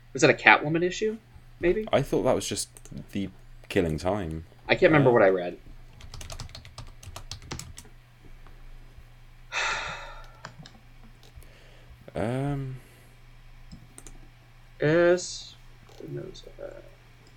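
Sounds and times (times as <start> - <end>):
low steady hum: 0.0 - 17.3
speech: 0.1 - 5.6, 12.2 - 12.8, 14.8 - 16.9
typing on a computer keyboard: 5.9 - 7.9, 14.0 - 14.2.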